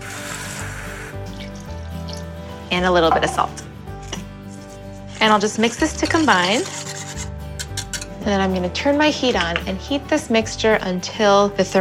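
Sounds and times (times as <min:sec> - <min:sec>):
water pouring into a saucepan holding sugar and light corn syrup: 0:00.0 - 0:02.2
speech: 0:02.7 - 0:03.6, 0:05.2 - 0:06.9, 0:08.2 - 0:11.7.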